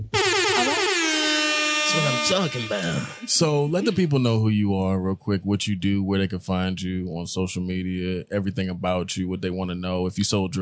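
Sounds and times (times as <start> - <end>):
loud blaring air horn blast: 0.0 - 4.0
speech: 1.9 - 10.6.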